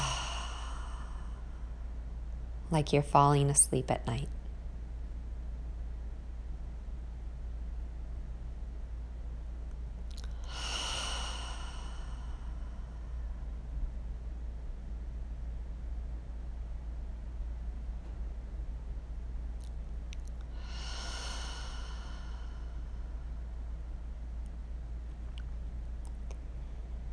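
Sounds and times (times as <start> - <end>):
deep cleansing breaths in through the nose and out through the mouth: 0.0 - 1.8, 10.1 - 13.6, 20.4 - 23.6
low hum: 0.0 - 27.1
speech: 2.7 - 4.4.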